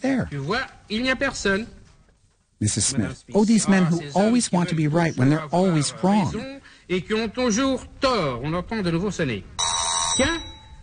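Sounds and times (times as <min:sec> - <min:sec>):
speech: 0:00.0 - 0:01.8, 0:02.6 - 0:09.6, 0:10.2 - 0:10.5
loud electric doorbell ringing: 0:09.6 - 0:10.8.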